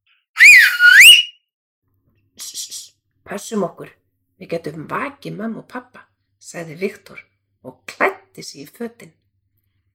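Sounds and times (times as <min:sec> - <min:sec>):
loud human whistling: 0:00.4 - 0:01.4
speech: 0:03.3 - 0:09.2.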